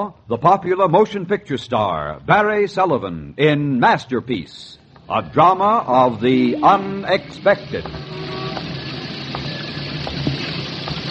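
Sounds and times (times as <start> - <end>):
speech: 0.0 - 8.1
rain: 7.0 - 11.0.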